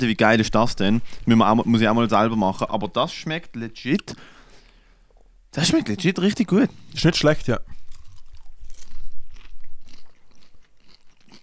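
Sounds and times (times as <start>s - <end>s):
speech: 0.0s - 4.4s, 5.5s - 7.7s
salted caramel popcorn being crunched and chewed: 6.4s - 11.4s.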